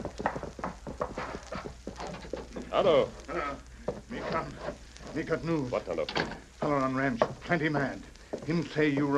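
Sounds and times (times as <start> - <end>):
horse hooves galloping: 0.0 - 5.7, 6.5 - 9.1
faint hiss: 0.0 - 9.1
speech: 2.8 - 9.1.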